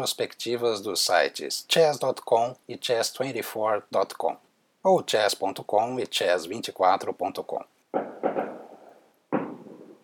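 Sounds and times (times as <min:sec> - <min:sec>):
speech: 0:00.0 - 0:07.7
fireworks rockets exploding outside: 0:07.9 - 0:10.0.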